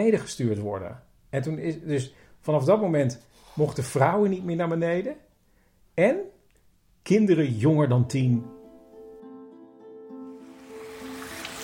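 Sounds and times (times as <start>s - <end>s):
speech: 0.0s - 5.2s, 6.0s - 6.4s, 7.0s - 8.6s
water rushing from a small waterfall: 10.5s - 11.6s.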